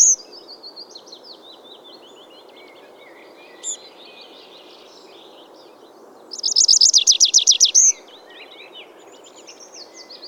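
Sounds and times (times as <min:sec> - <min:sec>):
tree pipit Anthus trivialis song: 0:00.0 - 0:10.2.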